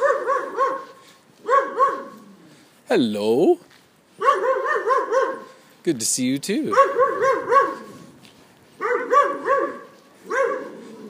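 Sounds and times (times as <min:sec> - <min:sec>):
dog barking: 0:00.0 - 0:02.2, 0:04.2 - 0:05.6, 0:06.7 - 0:08.0, 0:08.8 - 0:11.0
speech: 0:02.9 - 0:03.7, 0:05.8 - 0:07.4.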